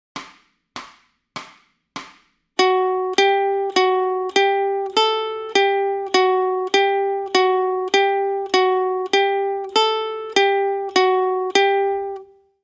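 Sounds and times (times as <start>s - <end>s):
ukulele warm-up in F sharp: 2.6s - 12.4s.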